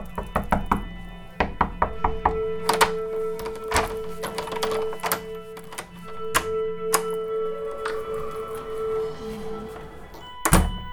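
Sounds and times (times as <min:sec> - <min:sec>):
door banging shut: 0:00.0 - 0:10.9
sharp knocks and heavier thuds on a door: 0:00.1 - 0:02.4.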